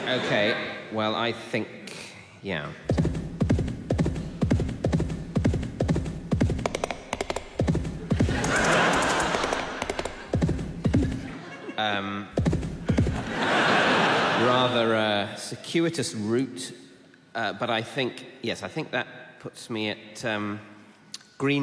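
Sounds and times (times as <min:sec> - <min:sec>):
laughter: 0:00.0 - 0:00.8, 0:08.0 - 0:12.1, 0:12.8 - 0:15.0
speech: 0:00.1 - 0:03.0, 0:14.6 - 0:20.7, 0:21.4 - 0:21.6
horse hooves clip-clopping: 0:02.9 - 0:11.3, 0:12.4 - 0:13.2.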